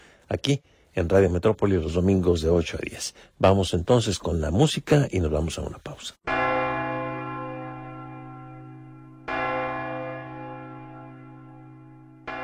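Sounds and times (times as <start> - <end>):
speech: 0.3 - 6.4
large bells ringing in a slow rhythm: 6.3 - 12.4.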